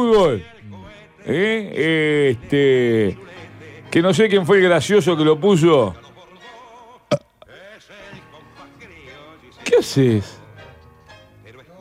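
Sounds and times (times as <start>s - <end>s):
speech: 0.0s - 0.5s, 1.2s - 6.1s, 9.7s - 10.4s
person burping: 7.1s - 7.5s.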